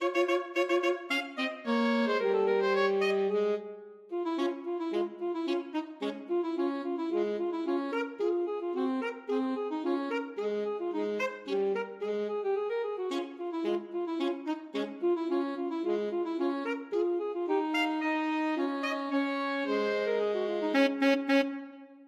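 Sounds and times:
alto saxophone duet playing a march: 0.0s - 22.0s.

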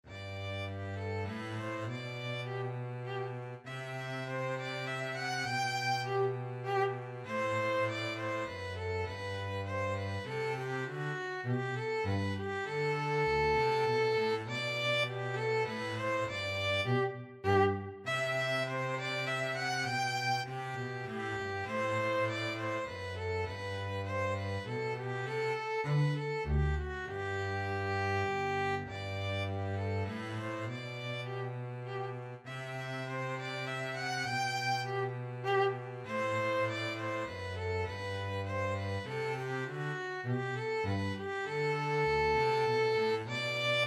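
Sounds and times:
minuet played as a violin and bass duet: 0.0s - 43.8s.

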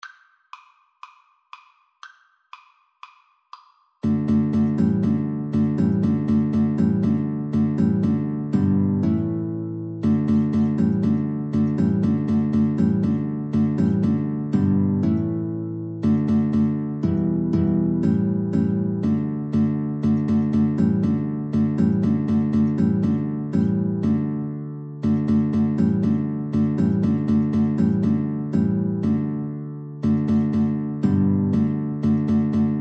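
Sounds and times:
guitar in a duet: 4.0s - 32.7s.

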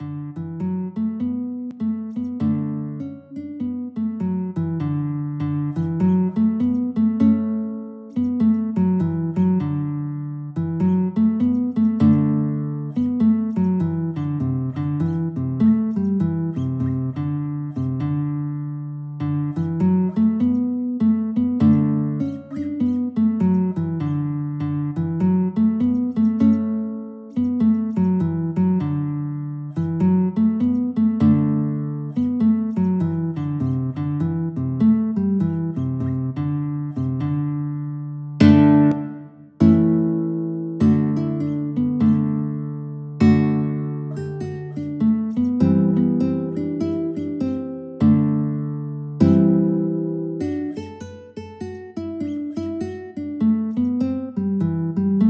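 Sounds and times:
guitar: 0.0s - 55.2s.

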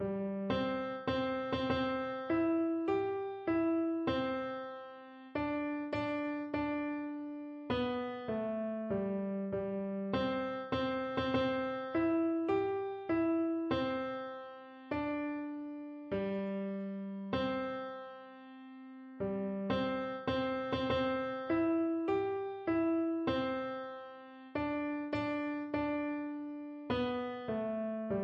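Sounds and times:
nursery rhyme played on piano: 0.0s - 28.2s.

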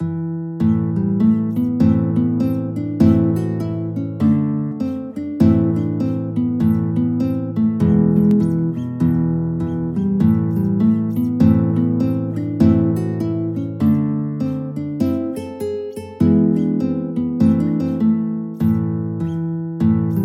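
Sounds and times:
flatpick guitar playing: 0.0s - 20.2s.

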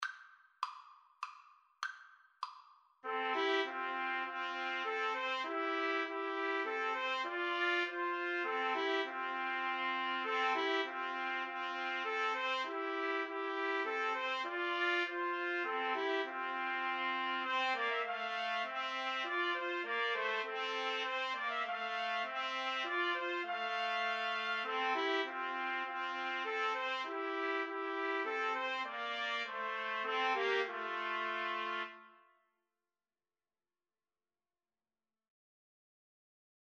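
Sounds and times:
trumpet trio playing karaoke accompaniment: 3.0s - 32.1s.

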